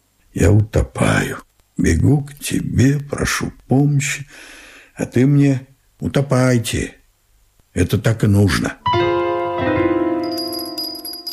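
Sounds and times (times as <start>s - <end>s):
speech: 0.4s - 7.0s, 7.8s - 9.0s
doorbell ringing in the front hall: 10.2s - 11.3s.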